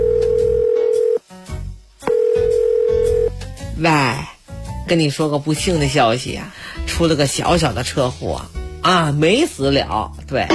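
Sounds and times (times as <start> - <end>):
telephone dial tone during a call home: 0.0 - 1.2, 2.1 - 3.3
speech: 3.8 - 4.2, 4.9 - 10.5.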